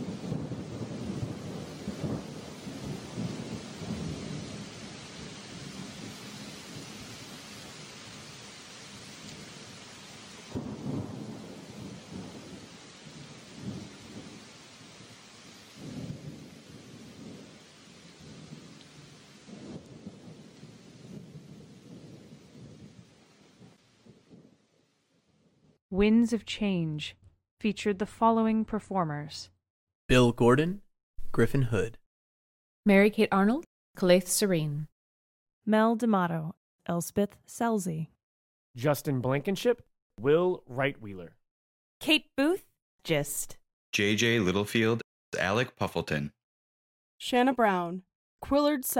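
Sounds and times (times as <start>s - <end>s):
heavy rain: 0.0s - 24.5s
deep thunder rumbling: 0.0s - 24.7s
speech: 25.9s - 32.0s, 32.8s - 34.9s, 35.6s - 38.1s, 38.8s - 41.4s, 42.0s - 46.4s, 47.2s - 48.9s.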